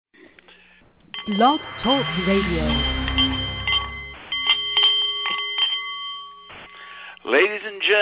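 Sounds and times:
brief low rumble: 1.0 - 4.6
Nepalese meditation bowl chiming: 1.1 - 7.0
speech: 1.3 - 3.0, 7.3 - 8.0.

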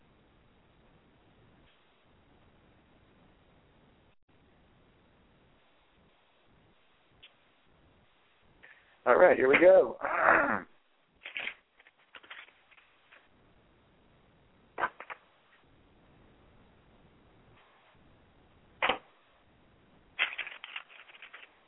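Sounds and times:
speech: 9.0 - 10.7
deck of tarot cards being shuffled: 11.2 - 13.3, 20.2 - 21.6.

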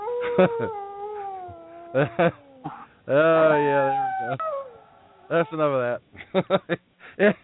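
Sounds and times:
wolf howling: 0.0 - 5.6
speech: 0.4 - 0.8, 1.9 - 4.6, 5.3 - 7.4
short louder bursts of possible voices: 3.1 - 4.4.

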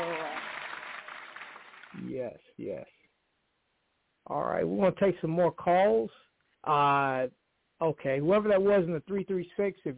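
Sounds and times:
crowd applause and cheering: 0.0 - 2.0
speech: 2.2 - 3.0, 4.3 - 9.9.

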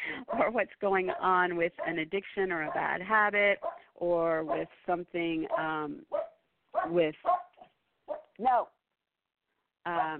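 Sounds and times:
speech: 0.4 - 6.2, 6.8 - 7.4, 8.4 - 8.8, 9.8 - 10.1
dog barking: 1.0 - 2.0, 3.6 - 3.9, 4.5 - 4.7, 5.5 - 8.4.

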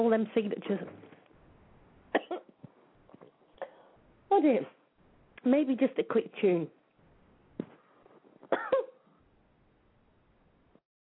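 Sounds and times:
speech: 0.0 - 1.1, 4.4 - 4.8, 5.4 - 6.8, 8.5 - 8.8
person coughing from a tickle in the throat: 2.2 - 2.5, 8.5 - 9.0.

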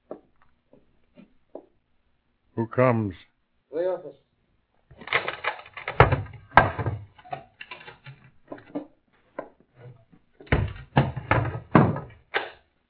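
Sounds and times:
speech: 2.6 - 3.3, 3.9 - 4.2
wooden door clattering knocks and latch rattles: 5.1 - 8.8, 10.4 - 12.2.

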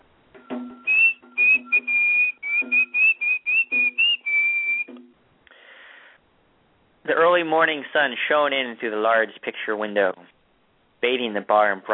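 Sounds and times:
man whistling a bright tune loudly: 0.4 - 5.0
speech: 7.4 - 10.2, 11.1 - 11.9.

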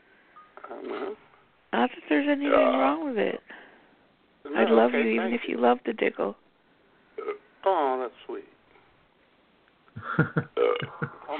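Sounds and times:
speech: 1.0 - 3.6, 4.4 - 6.4, 7.6 - 8.5, 10.1 - 11.3
short throaty burp: 7.2 - 7.4, 10.6 - 11.1.

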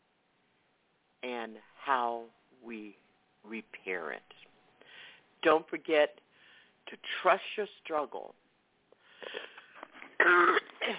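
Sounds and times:
speech: 1.4 - 4.5, 5.4 - 6.2, 6.9 - 8.4, 10.2 - 10.9
person with a lingering cough coughing: 9.2 - 10.9.

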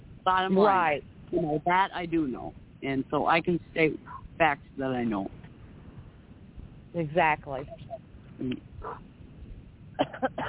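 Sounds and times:
low hiss: 0.0 - 10.4
speech: 0.2 - 5.4, 6.9 - 9.1
coughs: 10.0 - 10.4.

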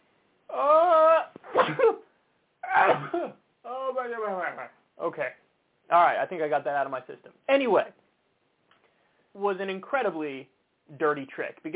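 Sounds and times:
person sneezing: 0.9 - 3.4
speech: 4.3 - 8.0, 9.4 - 11.7.

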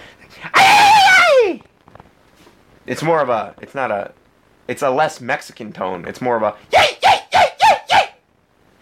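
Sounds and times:
voice imitating the squeal of a truck belt: 0.5 - 1.6, 6.7 - 8.2
speech: 2.9 - 6.8.

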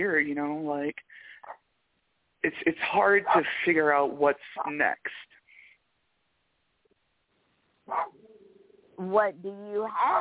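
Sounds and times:
speech: 0.0 - 1.3, 2.4 - 5.3, 7.9 - 8.2, 9.0 - 10.2
dog giving a short sharp bark: 7.9 - 8.2, 10.0 - 10.2.

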